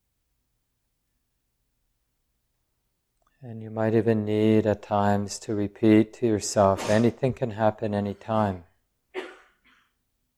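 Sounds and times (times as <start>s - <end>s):
speech: 3.4s - 8.7s
person coughing: 6.8s - 7.1s, 9.1s - 10.0s.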